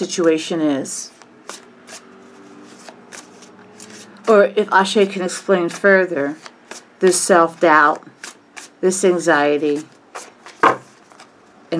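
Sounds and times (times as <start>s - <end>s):
speech: 0.0s - 1.6s, 4.3s - 8.2s, 8.8s - 9.9s
tarot cards shuffled by hand: 1.1s - 4.4s, 5.0s - 9.0s, 9.7s - 11.4s.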